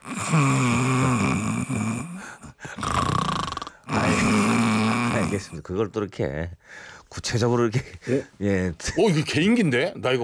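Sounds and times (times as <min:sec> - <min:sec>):
person imitating snoring with their voice: 0:00.0 - 0:05.6
speech: 0:05.3 - 0:10.2.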